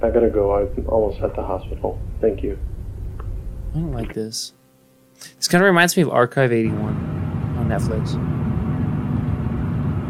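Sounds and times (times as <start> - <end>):
speech: 0.0 - 2.8, 3.7 - 4.6, 5.2 - 8.3
car engine and tire noise driving along a very dark road: 6.9 - 10.0.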